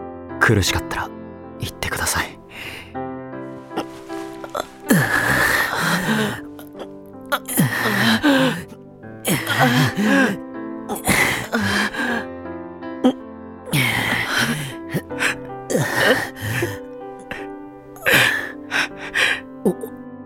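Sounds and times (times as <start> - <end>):
speech: 0.4 - 3.0, 9.6 - 10.4
sharp gasping breaths: 2.4 - 3.0, 3.6 - 12.3, 13.0 - 20.0
heavy sobbing: 3.7 - 12.3, 13.0 - 20.0.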